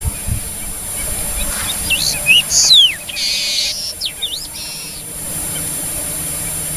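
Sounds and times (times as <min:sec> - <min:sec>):
Long-tailed meadowlark singing high whistled notes: 0:01.0 - 0:05.0.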